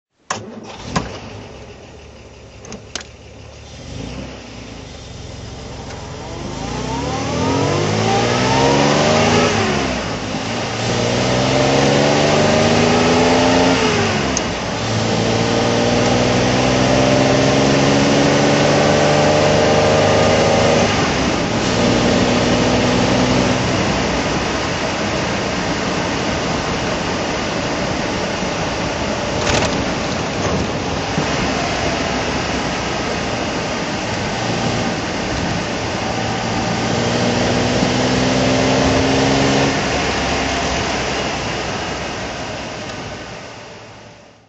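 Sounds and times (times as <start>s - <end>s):
Austin Healey 3000 Mk3 driving: 0.2s - 44.4s.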